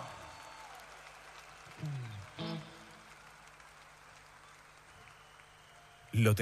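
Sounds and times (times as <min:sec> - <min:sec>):
audience applauding: 0:00.0 - 0:06.3
speech: 0:06.2 - 0:06.4.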